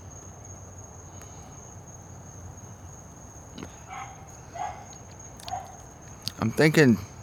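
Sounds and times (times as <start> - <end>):
steady high insect trill: 0.0 - 7.2
dog barking: 3.9 - 5.8
speech: 6.4 - 7.1.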